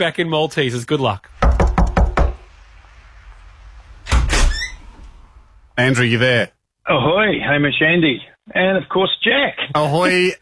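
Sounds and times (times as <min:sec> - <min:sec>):
speech: 0:00.0 - 0:01.6, 0:05.8 - 0:10.4
door thudding and rattling as it is handled: 0:01.3 - 0:05.8
quick sharp knocking on a door: 0:01.4 - 0:02.5.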